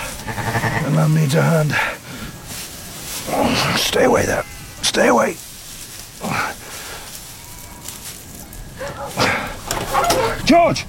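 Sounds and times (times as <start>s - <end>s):
speech: 0.9s - 2.0s, 3.3s - 4.4s, 5.0s - 5.4s, 10.5s - 10.8s
sheepdog herding sheep barking outdoors: 8.8s - 10.4s.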